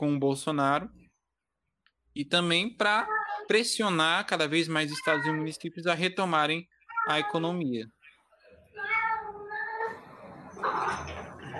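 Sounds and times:
speech: 0.0s - 1.0s, 2.2s - 8.0s
faint room noise: 0.0s - 11.5s
cat meowing: 4.9s - 5.5s, 6.9s - 7.4s, 8.8s - 10.0s.

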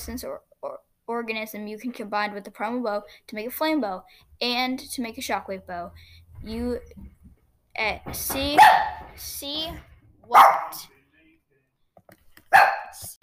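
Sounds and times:
speech: 0.0s - 7.1s, 7.8s - 10.9s
dogs barking: 8.6s - 9.1s, 10.3s - 10.9s, 12.5s - 13.0s.

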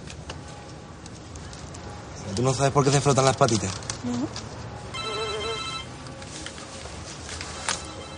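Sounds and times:
speech: 2.4s - 4.6s
mobile phone ringtone: 4.9s - 6.0s, 7.7s - 8.1s.

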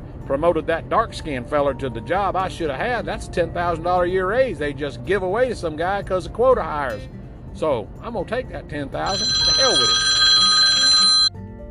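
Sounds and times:
speech: 0.3s - 10.2s
cell phone ringtone chiming: 9.1s - 11.4s.

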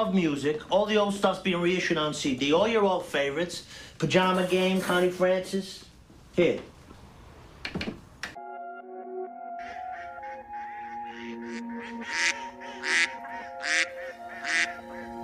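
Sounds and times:
speech: 0.0s - 6.7s
flock of geese honking: 9.6s - 15.2s.

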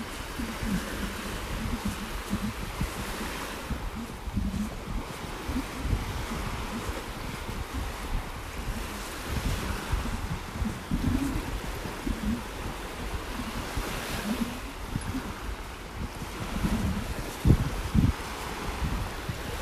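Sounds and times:
waves rushing: 0.0s - 19.6s
wind buffeting the microphone: 0.0s - 19.6s.

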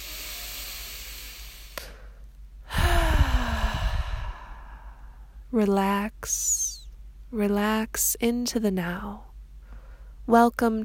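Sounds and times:
deep settling breath and sighing exhale during a guided meditation: 0.0s - 5.3s
speech: 5.6s - 6.6s, 7.3s - 9.3s, 10.3s - 10.8s.

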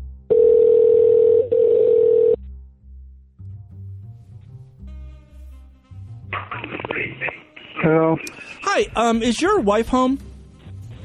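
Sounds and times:
telephone dial tone: 0.3s - 2.4s
speech: 7.9s - 10.3s.

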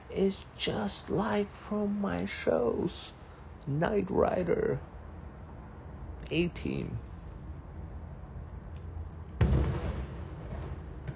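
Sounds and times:
steady hiss: 0.0s - 11.1s
speech: 0.1s - 4.9s, 6.3s - 7.1s
big firework exploding: 9.4s - 11.1s.

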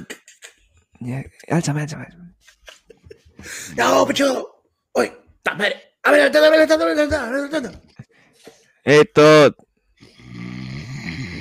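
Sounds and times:
speech: 1.0s - 2.6s, 3.4s - 7.9s, 8.8s - 9.6s
laughter: 2.4s - 3.7s
person snoring: 10.0s - 11.4s.

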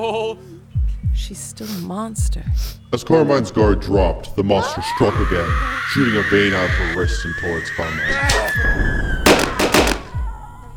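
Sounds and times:
speech: 0.0s - 9.2s
gunshots fired into a monster: 9.2s - 10.2s.

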